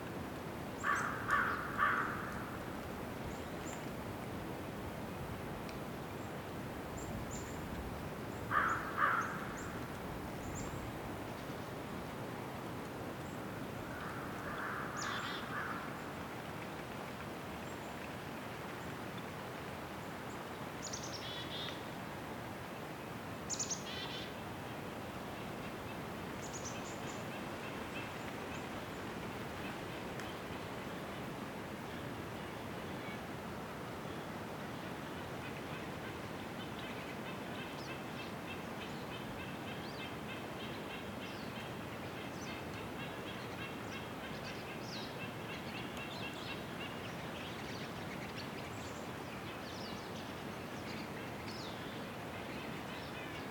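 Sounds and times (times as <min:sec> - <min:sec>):
slight breeze in a winter forest in the North Laurentian Woods: 0:00.0 - 0:53.5
crow in a winter forest in the North Laurentian Woods: 0:00.8 - 0:02.5, 0:08.5 - 0:09.7, 0:13.9 - 0:16.0.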